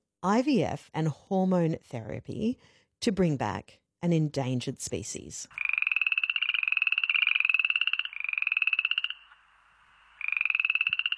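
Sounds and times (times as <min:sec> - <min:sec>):
speech: 0:00.2 - 0:05.6
frogs croaking in rapid pulsing trills: 0:05.5 - 0:11.1.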